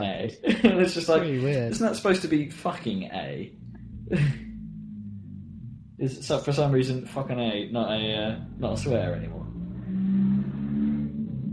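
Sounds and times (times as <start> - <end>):
speech: 0.0 - 4.4, 6.0 - 9.5
laughter: 0.4 - 2.0, 4.1 - 4.4
loud bass-heavy car passing outside: 0.8 - 11.5.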